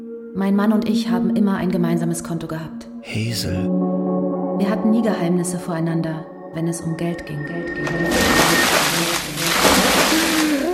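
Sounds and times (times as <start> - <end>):
speech: 0.4 - 3.9, 4.6 - 10.2
buckets of water poured over someone: 7.8 - 10.7.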